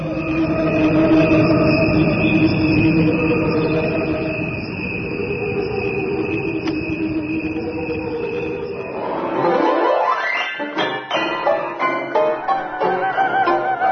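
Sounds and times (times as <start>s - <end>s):
dense low rumble: 0.0s - 9.0s
crickets chirping: 0.0s - 13.8s.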